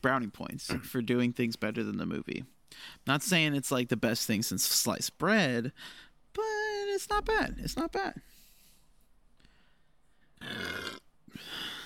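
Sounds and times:
speech: 0.0s - 8.3s
loud rasping burp: 10.4s - 11.1s.

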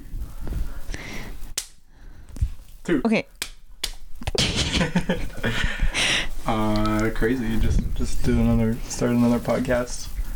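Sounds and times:
light rustle: 0.0s - 2.9s, 5.0s - 10.3s
single sharp crisp hand clap: 1.5s - 1.8s, 3.4s - 4.5s
speech: 2.9s - 3.4s, 4.8s - 10.1s
laughter: 4.4s - 5.8s.

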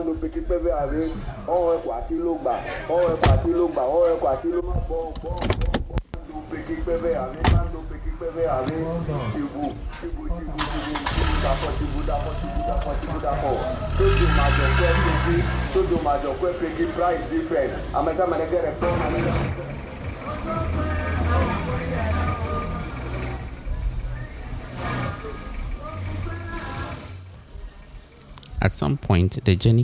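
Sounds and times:
speech: 0.0s - 19.6s, 28.7s - 29.8s
voices chattering: 0.0s - 29.8s
car engine starting and idling at a lorry station: 5.0s - 28.1s.

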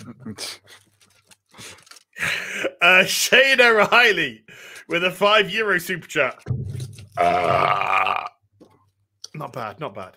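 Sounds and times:
speech: 0.0s - 0.8s, 2.8s - 6.6s, 7.2s - 8.3s, 9.4s - 10.1s
long loud throaty burp: 7.1s - 8.4s.

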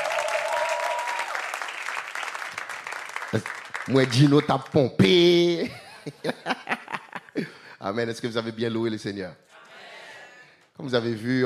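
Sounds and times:
room full of people applauding: 0.0s - 4.9s
speech: 3.3s - 6.8s, 7.4s - 9.4s, 10.8s - 11.4s
laughter: 5.6s - 7.6s.

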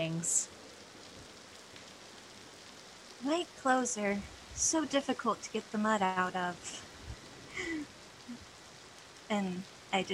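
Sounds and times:
speech: 0.0s - 0.6s, 3.2s - 6.9s, 7.6s - 8.5s, 9.3s - 10.1s
rain falling at night: 0.0s - 10.1s.

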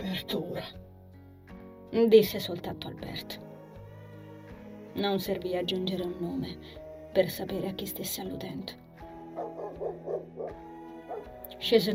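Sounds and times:
speech: 0.2s - 0.9s, 1.9s - 3.5s, 5.0s - 8.8s, 11.5s - 11.9s
dog barking in agitation: 9.4s - 11.4s.

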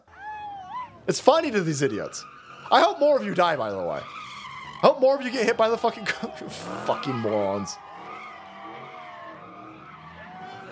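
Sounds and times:
tires of a stolen Dodge Hellcat muscle car squealing in a skid: 0.1s - 10.7s
speech: 1.1s - 4.2s, 4.8s - 7.8s
Dodge Hellcat muscle car engine roar: 2.4s - 10.7s.

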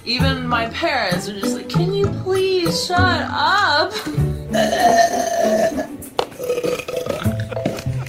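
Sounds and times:
speech: 0.0s - 6.0s
woman burping loudly: 4.5s - 7.6s.

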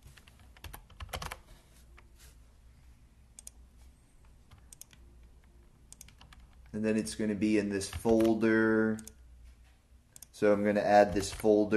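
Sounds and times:
typing a file name on a computer keyboard: 0.1s - 1.4s, 4.5s - 6.8s, 7.9s - 8.4s
speech: 6.8s - 9.1s, 10.4s - 11.7s.

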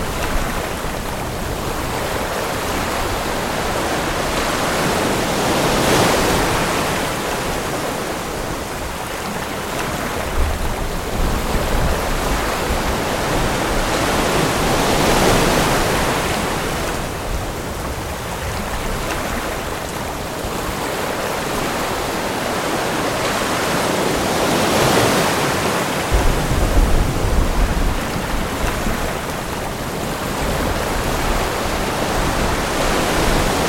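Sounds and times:
gentle ocean waves: 0.0s - 33.6s
low rumble of thunder: 26.1s - 32.6s
rhythmic patter of raindrops: 26.2s - 31.5s.

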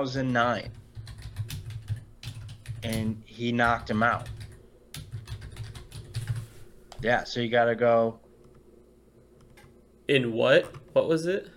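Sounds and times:
speech: 0.0s - 0.8s, 2.8s - 4.4s, 7.0s - 8.2s, 10.1s - 11.5s
computer keyboard typing during an online search: 0.4s - 7.0s, 10.5s - 11.0s.

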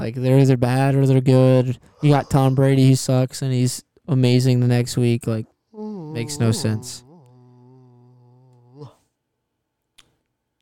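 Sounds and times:
speech: 0.0s - 7.1s
person yawning: 5.8s - 9.1s.

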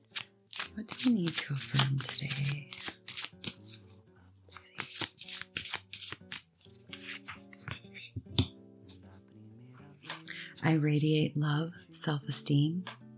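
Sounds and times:
deck of cards being shuffled: 0.0s - 8.5s
gentle music: 0.0s - 13.1s
speech: 0.8s - 2.8s, 10.6s - 13.0s.

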